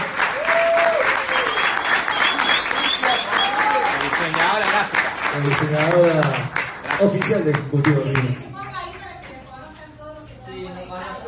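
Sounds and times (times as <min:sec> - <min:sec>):
crowd applause: 0:00.0 - 0:08.4
faint whistles and cheers: 0:00.3 - 0:04.1
speech: 0:05.4 - 0:08.5.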